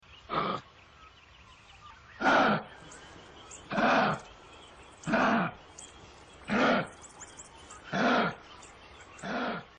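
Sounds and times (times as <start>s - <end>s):
kangaroo sounds: 2.2s - 9.7s.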